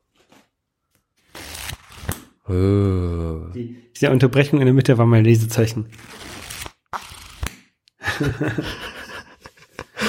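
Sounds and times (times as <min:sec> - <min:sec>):
paperback book pages being flipped: 0:00.0 - 0:02.3, 0:05.9 - 0:07.7
speech: 0:02.5 - 0:06.2, 0:08.2 - 0:09.0
laughter: 0:08.0 - 0:10.0.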